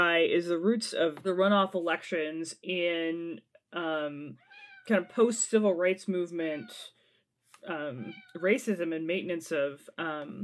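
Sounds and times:
speech: 0.4 - 7.0, 7.6 - 10.4
cat meowing plaintively: 4.4 - 5.1, 8.0 - 8.4.

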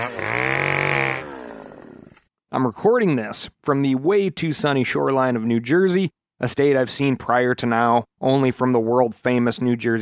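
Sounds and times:
chainsaw engine revving at a steady high whine: 0.0 - 2.3
speech: 2.5 - 10.0.

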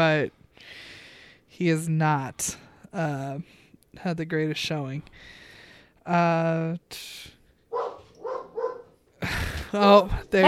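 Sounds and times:
speech: 0.0 - 0.4, 1.6 - 5.4, 6.1 - 7.9, 9.2 - 10.4
dog barking at animal outside: 7.7 - 9.0.

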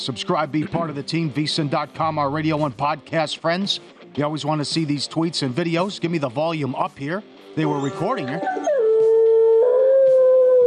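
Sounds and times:
speech: 0.0 - 8.7
male beagle howling: 7.8 - 10.6.

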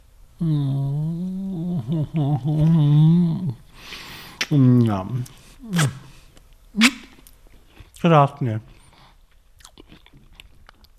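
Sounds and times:
speech: 0.4 - 1.0, 1.9 - 6.0, 8.0 - 8.7
chewing crunchy baked salted roasted peanuts: 8.7 - 10.9.

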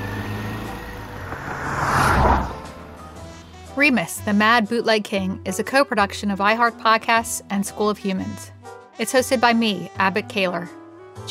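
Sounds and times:
car engine revving and pulling away: 0.0 - 3.4
speech: 3.8 - 11.3.

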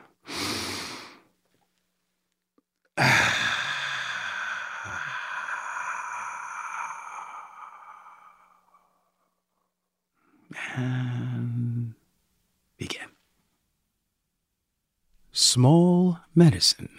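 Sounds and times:
slow deep breath: 0.0 - 1.3, 3.0 - 11.7
speech: 15.6 - 16.9.

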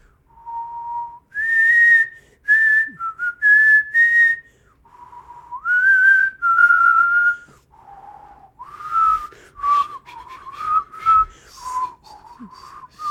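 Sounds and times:
breaths between phrases: 0.0 - 0.5, 2.1 - 2.5, 4.4 - 5.7, 7.3 - 13.1
person whistling a slow sustained melody: 0.3 - 13.1.

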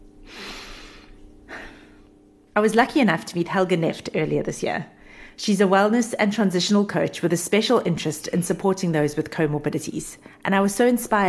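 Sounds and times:
deep breath: 0.2 - 2.0
speech: 2.6 - 11.2.

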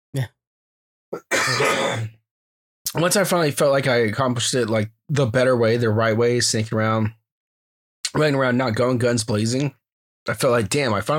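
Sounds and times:
speech: 0.1 - 0.4, 1.1 - 2.2, 2.9 - 7.2, 8.1 - 11.1
person coughing: 1.2 - 2.2
raspy throat clearing: 1.2 - 2.2.

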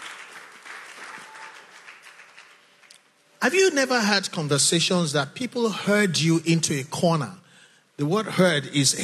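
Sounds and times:
crowd applauding indoors: 0.0 - 3.1
speech: 3.4 - 7.4, 8.0 - 9.0.

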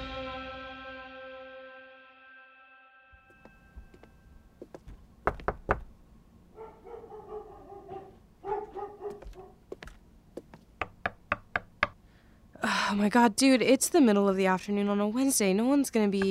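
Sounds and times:
knocking on a door: 5.3 - 5.9, 10.8 - 11.9
dog barking and whining: 6.5 - 9.6
speech: 12.9 - 16.2.

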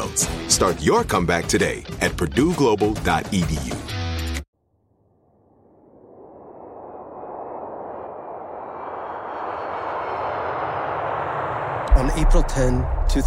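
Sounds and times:
speech: 0.0 - 3.8, 12.2 - 13.2
old DC-9 jet airplane engines roaring while landing: 5.7 - 13.2.

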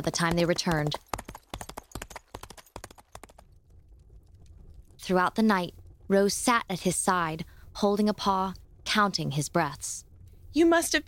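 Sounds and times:
speech: 0.0 - 1.1, 5.1 - 11.0
horse hooves clip-clopping on a hard surface: 0.0 - 4.7.

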